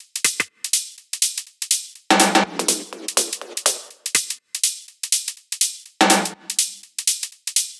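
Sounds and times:
music mix without kick and snare: 0.2s - 0.9s, 2.1s - 4.8s, 6.0s - 6.8s.

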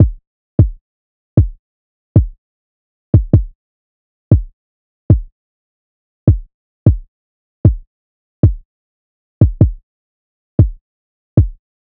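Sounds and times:
kick drum: 0.0s - 0.8s, 1.4s - 1.6s, 2.2s - 2.4s, 3.1s - 3.5s, 4.3s - 5.3s, 6.3s - 8.7s, 9.4s - 9.8s, 10.6s - 10.8s, 11.4s - 11.6s.

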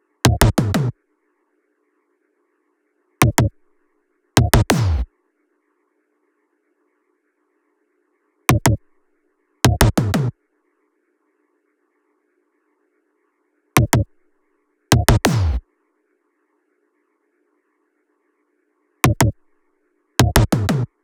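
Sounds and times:
dry tom drums: 0.3s - 0.9s, 3.2s - 3.5s, 4.4s - 5.1s, 8.5s - 8.8s, 9.7s - 10.3s, 13.8s - 14.1s, 14.9s - 15.6s, 19.0s - 19.4s, 20.2s - 20.9s.

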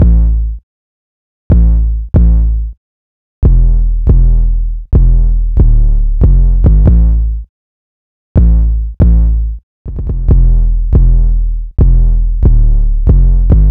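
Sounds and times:
short thumpy 808 bass in A minor at 140 BPM: 0.0s - 0.5s, 1.5s - 2.7s, 3.4s - 4.4s, 5.0s - 7.3s, 8.4s - 13.6s.

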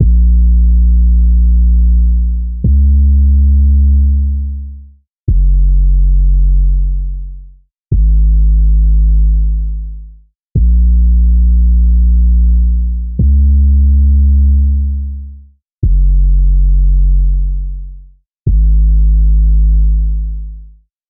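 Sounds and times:
dry bass loop in A minor: 0.0s - 20.8s.

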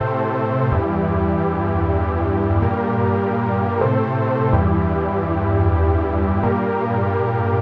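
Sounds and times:
synth loop in G minor: 0.0s - 7.5s.

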